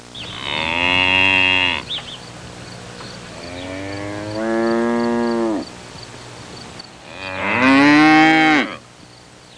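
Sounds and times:
birds chirping in the background: 0.0 - 0.7, 1.6 - 7.0
cow mooing: 0.3 - 1.9, 3.3 - 5.7, 7.1 - 8.8.

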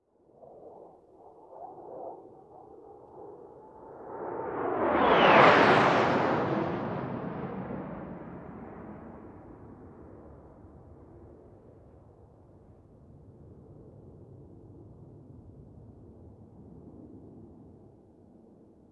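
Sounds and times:
aircraft on a runway taking off: 2.2 - 10.0.

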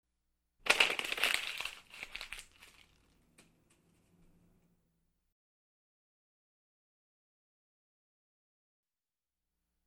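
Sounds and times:
paper crumpling: 0.7 - 3.2.

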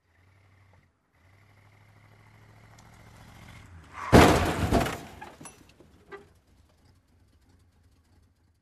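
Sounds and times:
car approaching: 0.0 - 8.5
car crash: 3.8 - 6.4.

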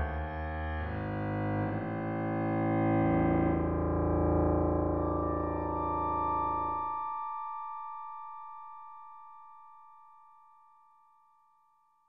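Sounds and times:
evil and mysterious piano playing: 0.1 - 9.0.

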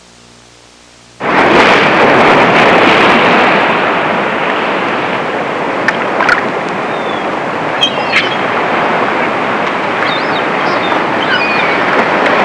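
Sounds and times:
ocean waves: 1.2 - 12.4
seagulls calling: 6.2 - 12.4.

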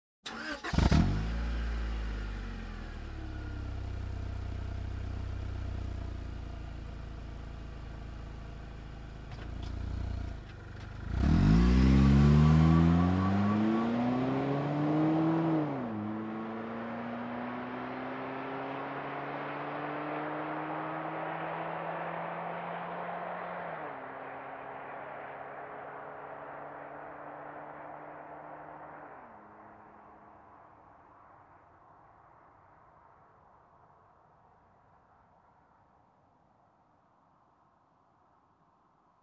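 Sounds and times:
car engine ignition: 0.2 - 31.1
car driving away fast: 0.3 - 5.1, 7.9 - 30.9.

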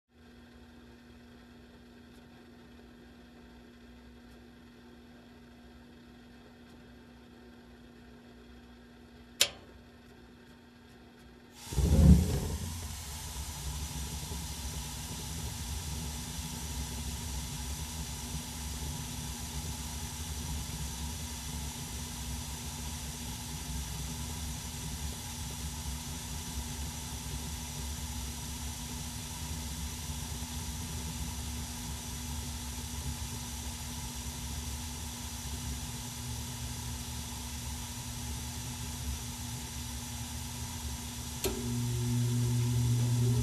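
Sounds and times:
small industrial machine switching on: 9.4 - 9.8, 11.6 - 43.4.

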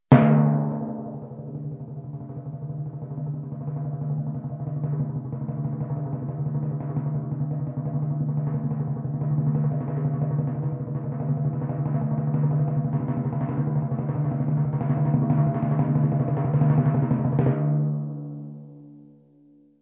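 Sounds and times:
long soft timpani roll: 0.1 - 18.7.

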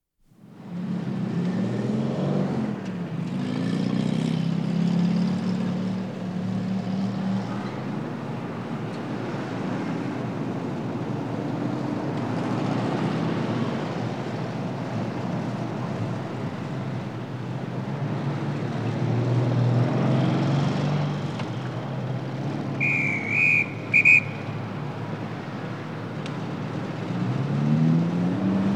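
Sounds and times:
city traffic: 0.4 - 28.7
whistle: 22.8 - 25.0.

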